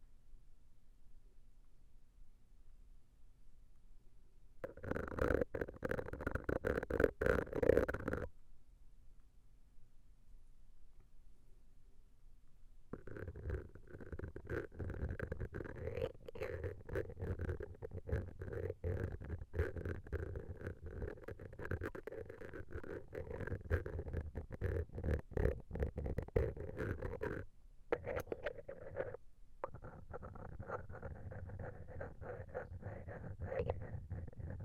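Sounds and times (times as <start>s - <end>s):
stainless steel ear pick scraping and rubbing: 4.6s - 8.3s, 13.0s - 34.6s.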